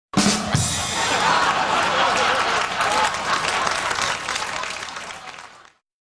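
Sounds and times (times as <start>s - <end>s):
drums: 0.1s - 4.2s
laughing: 0.8s - 5.6s.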